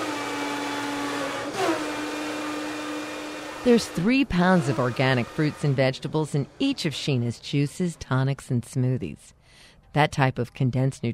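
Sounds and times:
blender whirring in the kitchen of a holistic juice shop in New Orleans: 0:00.0 - 0:06.9
speech: 0:03.6 - 0:11.1.

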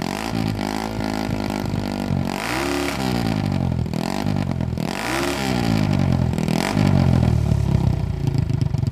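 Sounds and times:
Italian-made single-cylinder motorcycle engine revving: 0:00.0 - 0:08.9.

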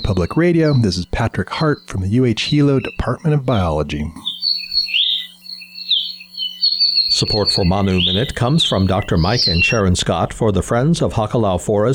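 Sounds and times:
bird song: 0:00.0 - 0:03.3, 0:04.2 - 0:10.0
low constant hum: 0:00.0 - 0:10.1
speech: 0:00.1 - 0:04.3, 0:07.2 - 0:11.9.

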